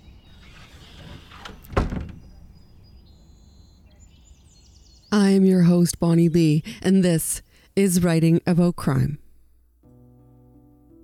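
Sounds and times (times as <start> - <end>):
heavy door slamming shut: 0.4 - 2.7
speech: 5.1 - 9.2.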